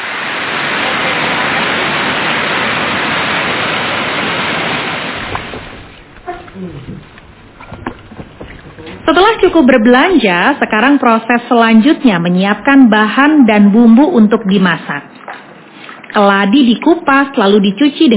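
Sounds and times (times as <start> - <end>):
heavy rain: 0.0 - 10.7
people talking quietly: 6.2 - 10.7
speech: 9.1 - 15.1, 16.2 - 18.1.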